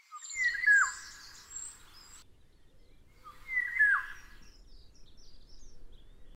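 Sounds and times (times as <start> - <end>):
golden oriole: 0.0 - 6.3.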